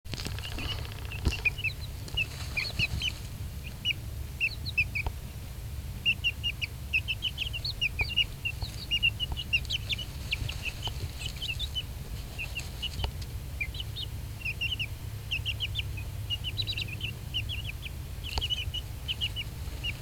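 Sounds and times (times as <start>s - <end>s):
low continuous hum: 0.1s - 20.0s
one-month-old Silkie chicken chicks peeping while dust bathing: 0.1s - 20.0s.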